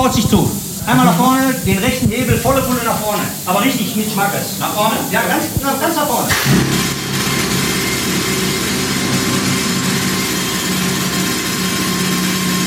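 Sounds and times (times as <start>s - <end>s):
speech: 0.1s - 7.0s
pneumatic rock drill hammering in a mine tunnel: 6.3s - 12.6s.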